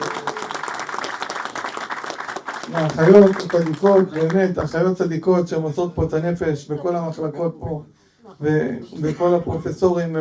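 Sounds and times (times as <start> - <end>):
crowd clapping for nurses at a hospital gathering: 0.0 - 4.6
speech: 2.7 - 10.1.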